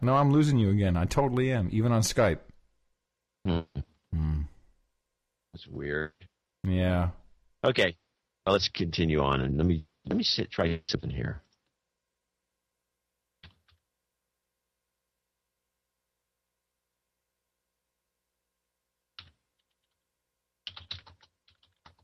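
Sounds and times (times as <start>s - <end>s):
speech: 0.0s - 2.5s, 3.4s - 4.5s, 5.5s - 11.4s
man typing on a computer keyboard: 13.4s - 13.8s, 19.2s - 20.0s, 20.6s - 22.0s.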